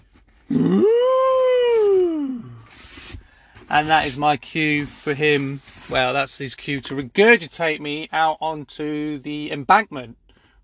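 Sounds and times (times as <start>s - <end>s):
human voice imitating a whale call: 0.5s - 2.6s
speech: 3.7s - 10.2s.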